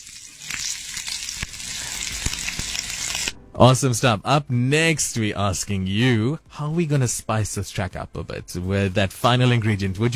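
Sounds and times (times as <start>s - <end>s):
food sizzling in a frying pan: 0.0s - 3.4s
sharp pops and spatters from a frying pan: 0.0s - 3.4s
speech: 3.6s - 10.1s.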